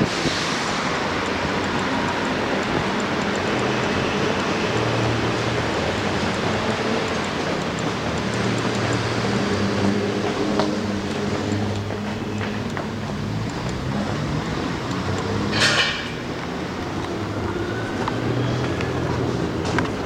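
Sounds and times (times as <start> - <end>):
city street traffic noise with low engine rumbles passing: 0.0 - 20.0.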